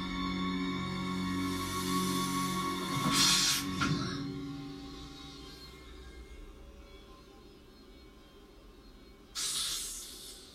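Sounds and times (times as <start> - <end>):
low steady hum: 0.0 - 9.4
snake hissing: 1.4 - 3.8, 9.4 - 10.5.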